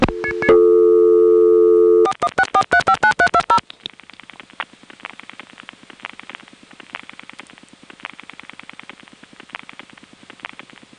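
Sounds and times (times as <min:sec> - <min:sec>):
fast interrupted beeping busy signal: 0:00.1 - 0:02.1
touch-tone dialing beeps: 0:01.7 - 0:03.6.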